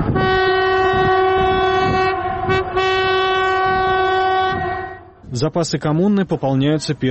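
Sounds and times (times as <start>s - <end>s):
train horn blaring: 0.0s - 5.3s
train rumbling past a station: 0.0s - 7.0s
speech: 5.4s - 7.0s.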